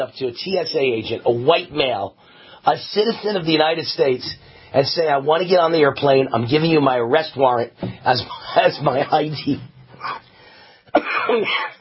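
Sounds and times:
speech: 0.0s - 10.2s, 11.0s - 11.8s
man coughing while laughing: 10.9s - 11.8s.

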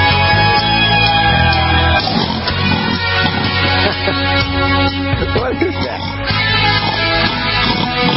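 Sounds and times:
laughter: 0.2s - 6.3s
person imitating a pot-bellied pig oinking: 2.0s - 4.6s, 5.1s - 8.1s.

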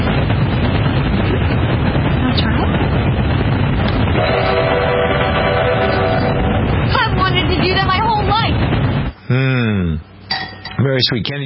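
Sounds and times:
steady loud rumble: 0.0s - 10.3s
train whistle blowing: 4.2s - 6.5s
speech: 11.0s - 11.4s.

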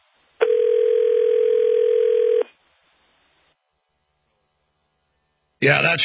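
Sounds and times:
telephone dial tone after a dropped cell phone call: 0.4s - 2.5s
speech: 5.6s - 6.0s.

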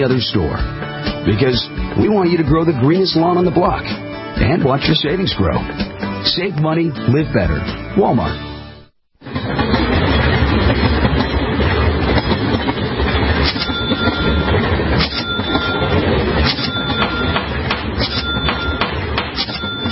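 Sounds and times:
speech: 0.0s - 8.5s
freight train rumbling along the rails: 9.2s - 19.8s.

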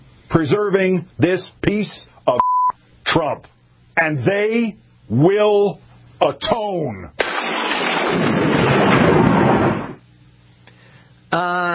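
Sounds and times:
speech: 0.3s - 2.5s, 3.1s - 7.2s, 8.1s - 8.3s
crackling lightning-bolt thunderclap sound effect: 7.2s - 10.0s.

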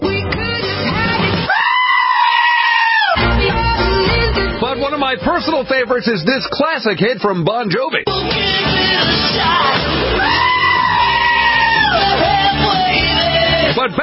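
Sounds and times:
driving rock song: 0.0s - 1.6s, 3.1s - 6.5s, 8.0s - 14.0s
goat screaming: 1.5s - 3.2s, 9.5s - 12.2s
speech: 5.3s - 10.6s, 13.7s - 14.0s.

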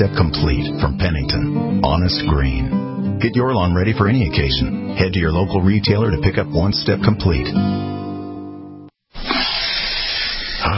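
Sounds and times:
speech: 0.0s - 7.9s
RV freshwater tank overflowing into the black water tank, hissing: 9.2s - 10.7s.

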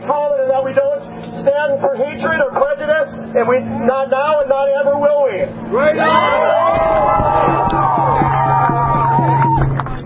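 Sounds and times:
speech: 0.7s - 7.8s
large crowd of demonstrators shouting and cheering while marching down a street in Leith: 5.7s - 10.0s.

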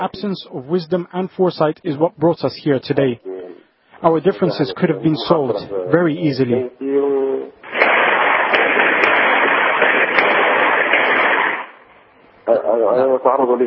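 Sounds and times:
speech: 0.0s - 3.3s, 4.0s - 7.0s, 13.2s - 13.6s
rapid gunfire inside a house: 7.6s - 11.9s.

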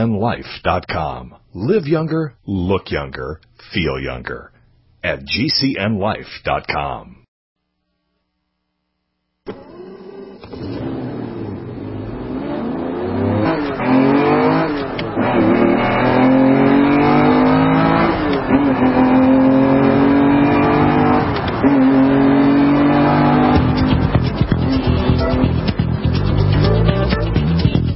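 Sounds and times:
speech: 0.0s - 7.2s, 9.5s - 9.7s
car engine revving: 9.5s - 27.8s.

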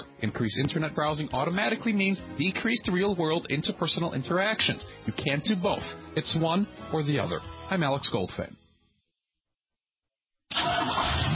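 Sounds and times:
speech: 0.2s - 8.6s
car engine starting: 10.5s - 11.3s.

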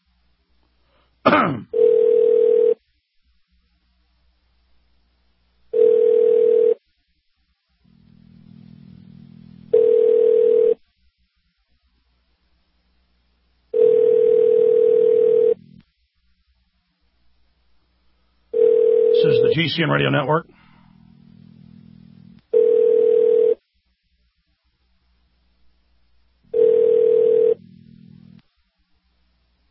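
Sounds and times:
speech: 1.3s - 1.7s, 19.7s - 20.6s
telephone ringback tone on an outgoing call: 1.8s - 2.8s, 5.7s - 6.8s, 9.7s - 10.8s, 13.7s - 15.6s, 18.5s - 19.8s, 22.5s - 23.6s, 26.5s - 28.2s
brief low hum: 7.8s - 9.8s, 20.5s - 22.5s, 27.6s - 28.4s.

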